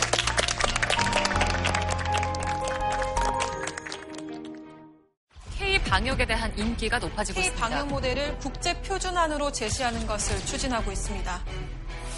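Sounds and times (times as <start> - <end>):
studio audience applauding: 0.0 - 4.8
speech: 5.9 - 11.8.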